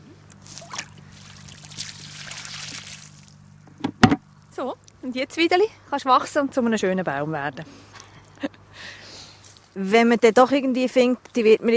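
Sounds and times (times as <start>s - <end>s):
faint low hum: 0.0s - 11.7s
water poured onto soil around a planted tree: 0.4s - 3.4s
speech: 4.6s - 7.9s, 9.8s - 11.7s.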